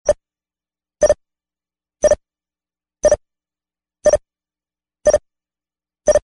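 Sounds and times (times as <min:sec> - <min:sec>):
telemetry regular beeps: 0:01.0 - 0:01.2, 0:02.0 - 0:02.2, 0:03.0 - 0:03.2, 0:04.0 - 0:04.3, 0:05.0 - 0:05.3.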